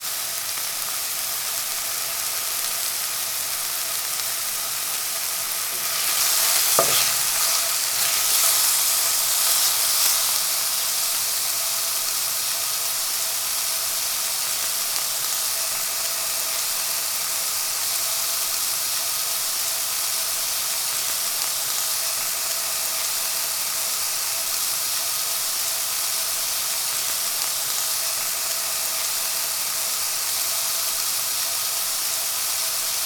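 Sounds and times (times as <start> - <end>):
chicken frying in a pan: 0.0 - 33.0.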